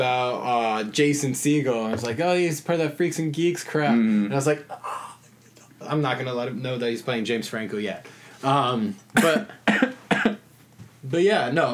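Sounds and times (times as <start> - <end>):
speech: 0.0 - 5.0, 5.8 - 9.9, 11.1 - 11.7
person coughing: 9.2 - 10.4.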